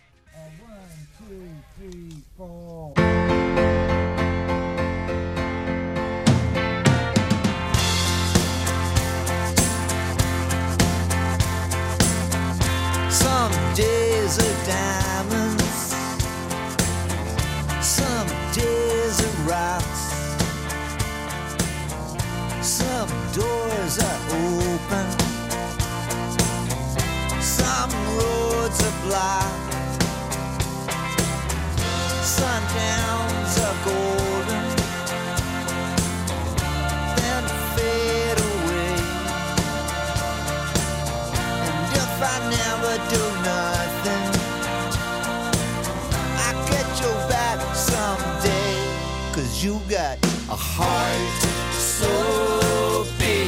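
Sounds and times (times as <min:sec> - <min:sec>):
speech: 0:01.0 - 0:03.7
full rock band backing from a film soundtrack: 0:03.0 - 0:53.4
driving rock drum beat: 0:06.9 - 0:49.0, 0:50.2 - 0:53.4
person singing lead vocal in a rock song: 0:13.1 - 0:16.2, 0:17.8 - 0:20.2, 0:22.6 - 0:25.5, 0:27.3 - 0:29.8, 0:32.0 - 0:53.4.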